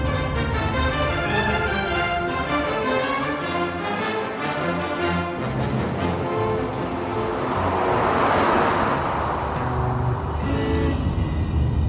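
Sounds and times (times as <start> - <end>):
rushing road noise: 0.0 - 11.8
car engine humming in slow traffic on a bridge: 5.4 - 11.8.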